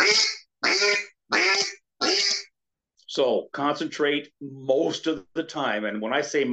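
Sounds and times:
duck call blown with an open throat by a hunter: 0.0s - 2.5s
speech: 3.2s - 6.5s.

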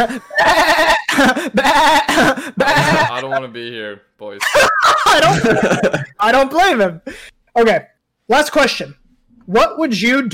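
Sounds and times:
laughter: 0.0s - 3.5s, 4.4s - 6.2s
speech: 0.0s - 10.3s
sheep-like bleats: 0.3s - 3.4s.

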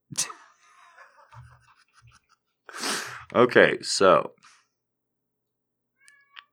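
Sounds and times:
speech: 3.3s - 4.4s
cat meowing: 6.0s - 6.5s.

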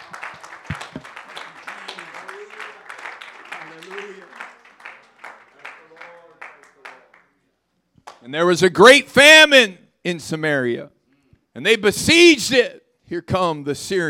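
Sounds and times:
crowd clapping along in a steady rhythm: 0.0s - 7.4s, 8.0s - 8.2s
speech: 8.3s - 11.0s, 11.6s - 14.0s.

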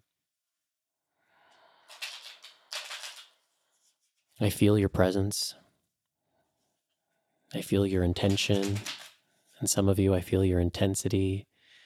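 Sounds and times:
deck of tarot cards being shuffled: 1.9s - 3.4s, 8.2s - 9.2s
speech: 4.4s - 5.6s, 7.5s - 9.0s, 9.6s - 11.5s.

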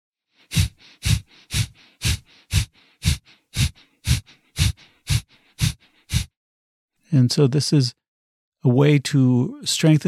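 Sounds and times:
rapid rhythmic forceful breaths through the nose in fire breathing: 0.4s - 6.4s
speech: 7.1s - 8.0s, 8.6s - 10.0s.

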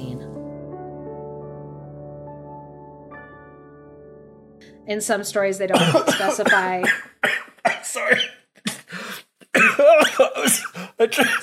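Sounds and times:
speech: 4.6s - 8.4s, 9.8s - 11.4s
person coughing after choking on a drink: 5.7s - 11.4s
strained throaty gasps and rasps: 8.7s - 9.5s.

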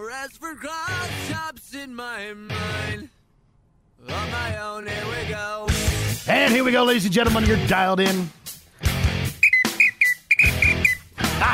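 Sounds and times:
speech: 0.1s - 3.2s, 4.0s - 8.4s
toy whistle blown in short shrill toots: 9.4s - 11.1s.

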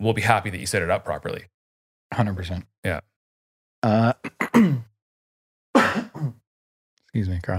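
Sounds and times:
speech: 0.0s - 3.1s, 3.8s - 4.7s, 7.1s - 7.5s
person coughing and clearing throat into the microphone: 3.9s - 4.9s, 5.8s - 6.4s.

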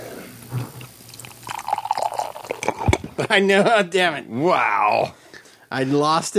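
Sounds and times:
beer pouring from a glass growler: 0.6s - 3.1s
speech: 3.2s - 6.3s.

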